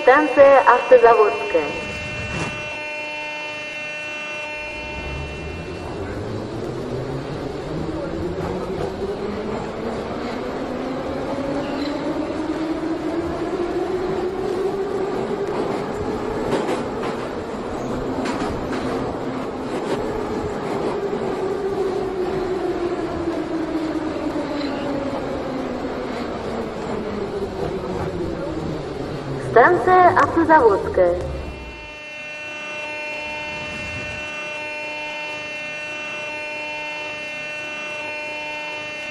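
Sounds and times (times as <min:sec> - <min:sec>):
speech: 0:00.0 - 0:01.9, 0:30.5 - 0:31.2
metro train running in a train-simulator video game: 0:00.0 - 0:39.0
brief tonal signal of a metro train in a train-simulator video game: 0:00.4 - 0:06.2, 0:31.2 - 0:35.6
metro train traction-motor whine in a train-simulator video game: 0:01.5 - 0:09.5, 0:31.2 - 0:39.0.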